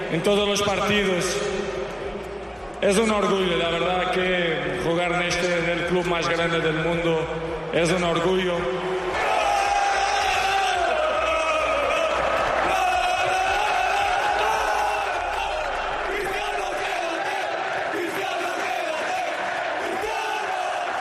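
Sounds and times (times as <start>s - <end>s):
speech: 0.1s - 1.6s, 2.8s - 8.9s
football stadium crowd chanting for a player to stay: 9.0s - 20.9s.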